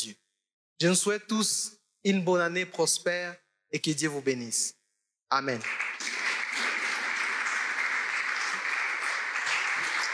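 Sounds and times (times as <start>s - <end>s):
speech: 0.0s - 0.2s, 0.8s - 5.9s
audience at a religious New Year gathering applauding: 5.6s - 10.1s.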